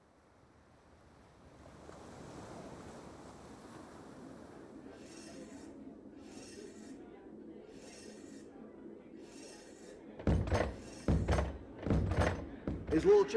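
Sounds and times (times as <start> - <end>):
wind: 0.0 - 13.3
heavy pounding blows on a door: 10.2 - 13.2
speech: 13.0 - 13.3.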